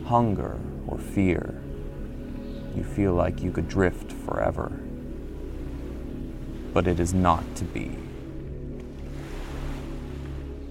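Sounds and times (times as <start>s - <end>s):
speech: 0.1s - 1.7s, 2.8s - 4.9s, 6.8s - 8.1s
water churning and frothing into waves: 2.8s - 10.6s.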